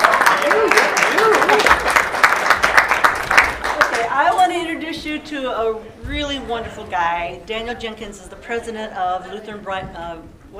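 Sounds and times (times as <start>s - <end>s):
audience applauding: 0.0s - 4.2s
speech: 5.1s - 10.5s.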